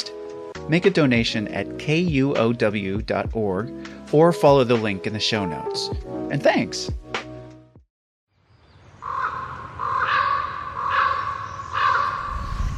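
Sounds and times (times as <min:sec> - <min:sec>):
speech: 0:00.7 - 0:07.0
raven croaking in Sitka Alaska: 0:09.0 - 0:12.6.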